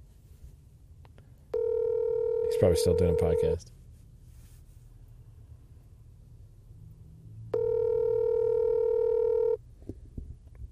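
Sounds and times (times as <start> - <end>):
phone line ringing with a long electronic tone: 1.5 - 3.6, 7.5 - 9.6
speech: 2.6 - 3.8.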